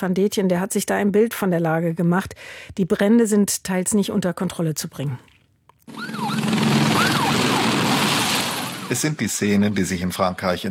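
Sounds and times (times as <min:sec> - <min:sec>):
speech: 0:00.0 - 0:05.3, 0:08.9 - 0:10.6
wailing emergency siren: 0:05.9 - 0:08.9.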